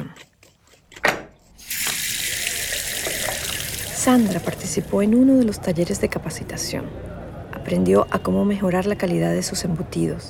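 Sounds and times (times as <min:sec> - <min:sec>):
tap water rushing while rinsing a scaled fish: 0:01.6 - 0:05.2
speech: 0:04.0 - 0:10.2.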